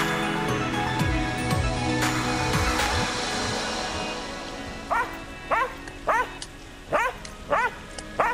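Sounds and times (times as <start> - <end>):
hissing noise: 0.0 - 8.3
dog barking: 4.9 - 8.3.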